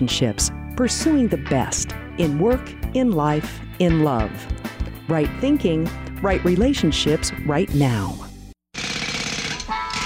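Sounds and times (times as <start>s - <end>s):
speech: 0.0s - 8.3s
jackhammer pounding: 8.7s - 10.0s.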